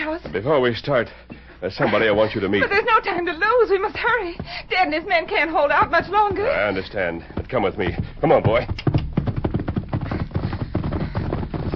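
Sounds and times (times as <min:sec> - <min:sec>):
horse hoofbeats clattering along at speed: 0:00.0 - 0:11.7
speech: 0:00.2 - 0:08.8.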